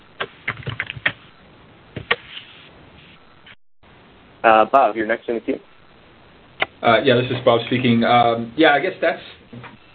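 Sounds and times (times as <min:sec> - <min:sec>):
typing on a computer keyboard: 0:00.5 - 0:01.2
speech: 0:04.4 - 0:05.7, 0:06.8 - 0:09.9.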